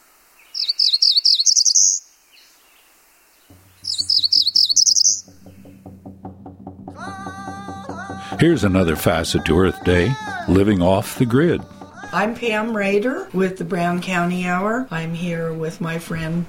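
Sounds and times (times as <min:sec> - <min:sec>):
cerulean warbler singing: 0:00.4 - 0:12.9
low rhythmic pulsing: 0:03.5 - 0:16.3
speech: 0:08.3 - 0:16.4.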